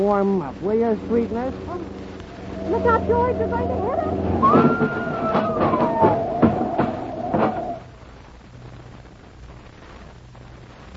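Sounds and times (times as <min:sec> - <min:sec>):
speech: 0:00.0 - 0:02.0, 0:02.6 - 0:06.0
clattering knocks and bangs: 0:01.0 - 0:07.9
ambulance siren wailing: 0:01.6 - 0:07.8.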